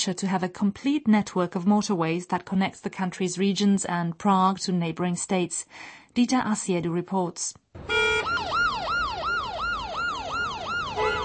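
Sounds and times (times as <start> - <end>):
speech: 0.0 - 9.0
ambulance siren yelping in congested traffic: 7.8 - 11.2
low rumble of congested bumper-to-bumper road traffic in Prague: 7.8 - 11.2.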